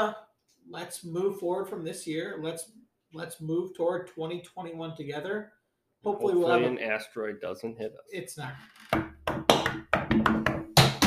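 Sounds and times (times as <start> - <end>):
speech: 0.0 - 10.4
knocking on wood around a house: 8.8 - 11.0.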